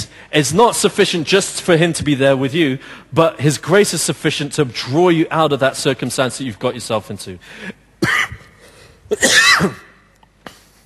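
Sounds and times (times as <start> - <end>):
speech: 0.3 - 8.4, 9.1 - 9.9
whooping-cough coughing with raspy whooping breath: 8.0 - 10.0.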